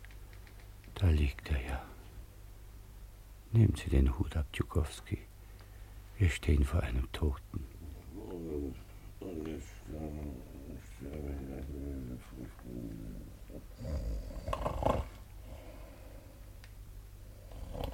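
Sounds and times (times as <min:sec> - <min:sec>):
speech: 0:01.0 - 0:01.9, 0:03.5 - 0:05.3, 0:06.2 - 0:07.8, 0:08.7 - 0:14.6
quiet breathing: 0:01.4 - 0:02.3, 0:05.0 - 0:06.2, 0:07.5 - 0:16.6
man snoring loudly: 0:11.7 - 0:15.8, 0:17.4 - 0:17.9.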